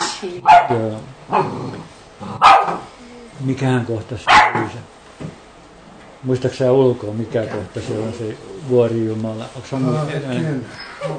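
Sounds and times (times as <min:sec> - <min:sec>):
speech: 0:00.2 - 0:05.0, 0:06.2 - 0:11.1
small dog yapping: 0:00.4 - 0:01.4, 0:02.4 - 0:02.9, 0:04.3 - 0:04.8.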